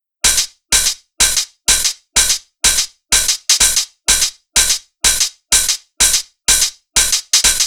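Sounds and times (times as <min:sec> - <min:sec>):
dance beat: 0:00.3 - 0:07.6.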